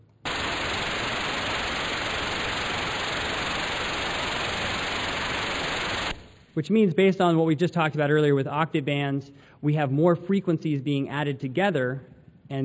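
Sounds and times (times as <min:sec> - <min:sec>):
white noise test signal: 0:00.0 - 0:07.4
speech: 0:06.6 - 0:12.6.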